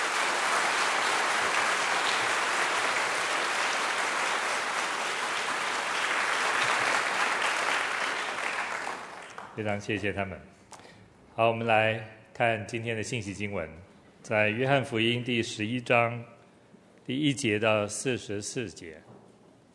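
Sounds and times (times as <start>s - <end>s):
audience applauding: 0.0s - 9.6s
speech: 9.6s - 10.6s, 11.4s - 16.3s, 17.1s - 19.1s.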